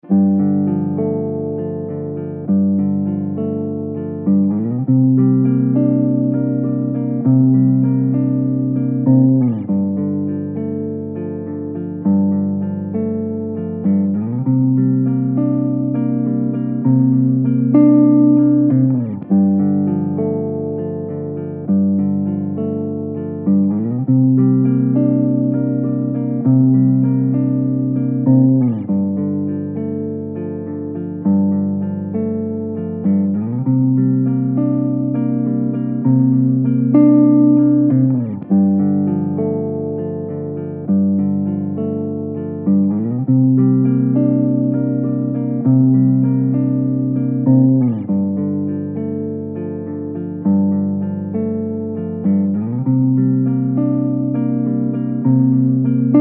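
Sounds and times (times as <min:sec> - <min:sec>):
guitar improvisation in G minor: 0:00.0 - 0:56.1.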